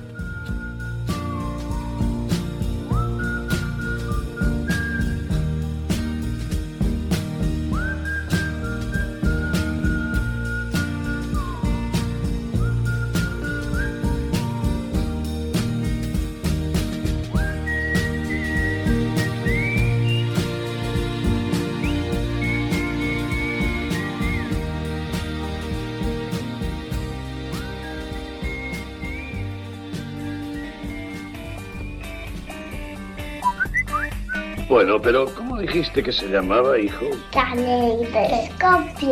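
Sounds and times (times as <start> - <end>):
clear high professional whistled melody: 0.0 - 34.9
full instrumental backing with steady percussion: 0.0 - 39.0
speech: 34.8 - 39.0.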